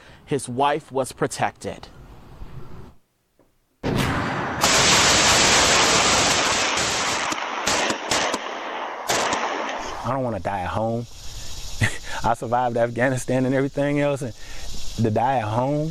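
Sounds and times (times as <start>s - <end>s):
speech: 0.3s - 1.9s, 10.1s - 11.2s, 12.2s - 15.8s
gunfire during a shootout between a homeowner and burglars: 3.8s - 10.0s.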